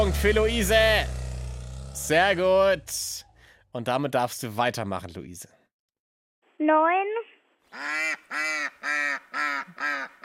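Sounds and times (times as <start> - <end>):
speech: 0.1 - 1.2, 2.0 - 5.6, 6.6 - 10.2
duck quacking: 7.7 - 10.2.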